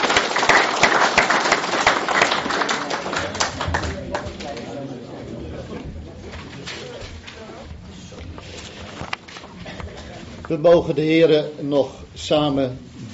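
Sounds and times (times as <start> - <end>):
audience applauding: 0.0 - 4.7
speech: 10.5 - 12.9.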